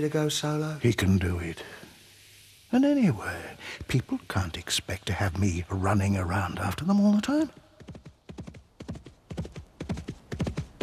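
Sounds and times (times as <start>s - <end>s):
speech: 0.0s - 1.8s, 2.7s - 7.6s
horse hooves cantering: 7.0s - 10.8s.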